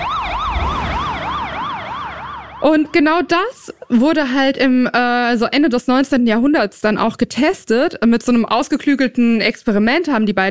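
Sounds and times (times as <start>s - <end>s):
passing emergency siren wailing with Doppler pitch shift: 0.0s - 4.2s
speech: 2.6s - 10.4s.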